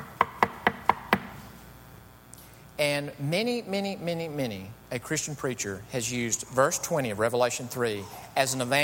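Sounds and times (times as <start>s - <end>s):
quick knocks on a wooden door: 0.0s - 1.3s
speech: 2.8s - 8.8s.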